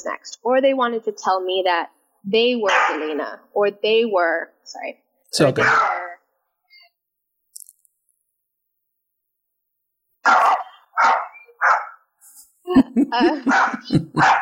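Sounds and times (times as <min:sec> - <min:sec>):
speech: 0:00.0 - 0:06.0, 0:10.3 - 0:10.5, 0:12.7 - 0:14.4
dog barking: 0:02.7 - 0:03.1, 0:05.6 - 0:06.1, 0:10.2 - 0:12.0, 0:13.4 - 0:14.4
laughter: 0:12.7 - 0:14.4.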